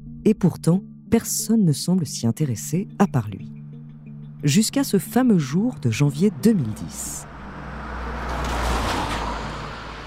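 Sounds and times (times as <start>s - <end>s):
speech: 0.2s - 3.6s, 4.4s - 7.3s
car speeding past through a village: 7.0s - 10.0s.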